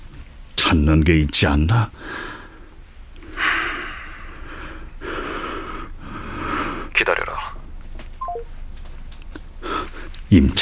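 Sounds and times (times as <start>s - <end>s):
faint hiss: 0.0s - 10.6s
speech: 0.7s - 2.3s, 7.0s - 7.5s, 10.3s - 10.6s
short electronic telephone keypad dialing beeps: 8.2s - 8.5s.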